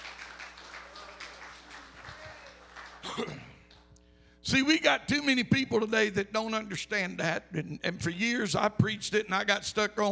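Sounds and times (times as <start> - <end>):
audience clapping at an evening church service: 0.0 - 3.9
speech: 4.5 - 10.1.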